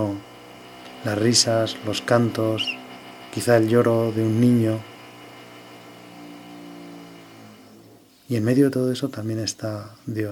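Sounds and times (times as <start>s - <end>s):
power drill spinning: 0.0s - 8.2s
speech: 1.0s - 2.8s, 3.4s - 4.9s, 8.3s - 10.3s.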